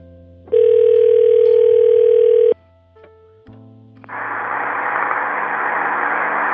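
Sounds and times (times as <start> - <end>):
telephone line tone on a working phone line: 0.5 - 2.6
static hiss on an open phone line: 4.0 - 6.5.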